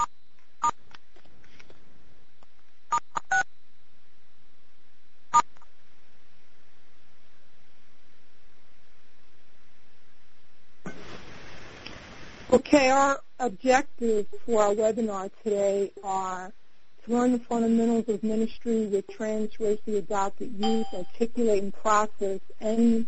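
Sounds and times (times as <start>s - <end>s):
hissing static: 10.8s - 16.5s
speech: 12.5s - 23.0s
telephone keypad tones from pressing star six on a webinar call: 20.6s - 21.1s.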